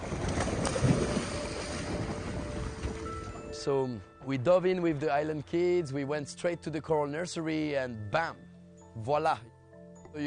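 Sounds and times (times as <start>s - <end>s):
wind buffeting the microphone: 0.0s - 3.6s
boat hull rushing over water: 0.0s - 3.8s
speech: 3.6s - 9.5s.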